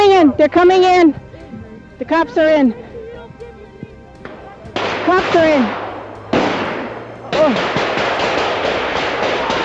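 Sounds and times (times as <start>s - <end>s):
speech: 0.3s - 1.2s, 2.0s - 2.8s, 5.0s - 5.8s, 7.4s - 7.8s
gunshots at a roadblock in the pines at Oka: 4.8s - 9.6s
rapid dense barrage of gunfire at a roadblock in the pines at Oka: 4.8s - 9.6s.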